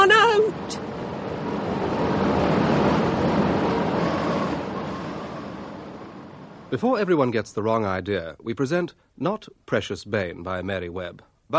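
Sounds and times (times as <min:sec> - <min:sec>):
steady broad hissing roar of wind: 0:00.0 - 0:07.1
speech: 0:06.7 - 0:11.5.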